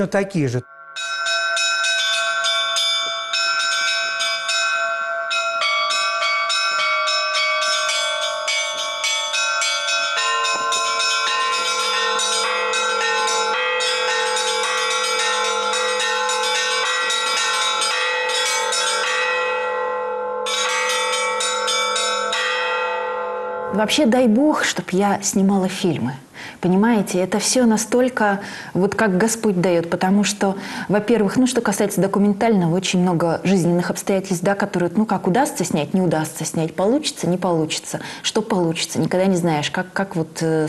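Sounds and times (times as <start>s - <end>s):
speech: 0.0s - 1.2s, 23.8s - 40.6s
church bells pealing: 0.0s - 24.4s.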